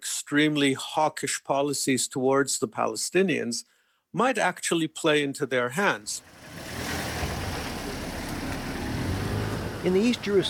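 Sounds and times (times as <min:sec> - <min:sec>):
speech: 0:00.3 - 0:06.8, 0:09.8 - 0:10.4
car engine rumbling in a narrow street in East Jerusalem: 0:06.2 - 0:10.4
street noise in East Jerusalem: 0:06.2 - 0:10.4.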